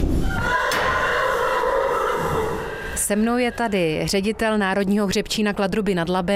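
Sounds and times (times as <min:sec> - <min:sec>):
horse neighing at a national stud farm: 0:00.2 - 0:03.3
speech: 0:03.1 - 0:06.3.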